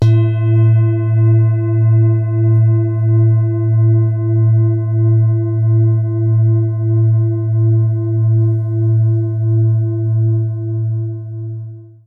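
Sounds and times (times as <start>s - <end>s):
low singing bowl: 0.0s - 12.0s.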